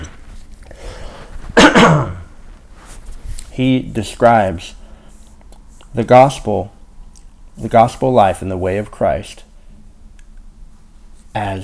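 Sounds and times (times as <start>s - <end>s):
adult man clearing throat: 1.6s - 2.3s
speech: 3.6s - 4.8s, 6.0s - 6.8s, 7.6s - 9.5s, 11.4s - 11.6s.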